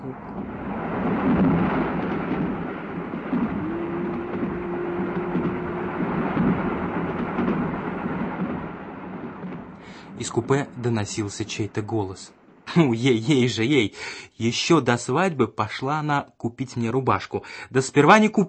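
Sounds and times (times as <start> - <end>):
speech: 0.0 - 0.6, 10.2 - 18.4
low sustained tone: 0.0 - 9.4
dense continuous roar of train wheels and carriage noise: 0.0 - 11.1
train rumbling past a semaphore signal: 0.0 - 15.0.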